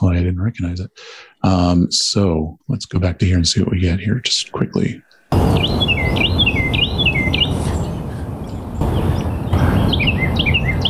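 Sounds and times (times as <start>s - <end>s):
speech: 0.0s - 6.4s
background noise: 0.0s - 10.8s
Carolina wren singing two different songs: 4.2s - 10.8s.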